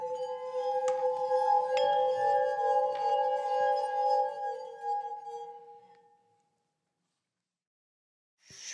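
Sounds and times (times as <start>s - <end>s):
faint glass clinks: 0.9s - 4.9s
wet fingers rubbing rims of water-filled glasses: 0.9s - 4.9s.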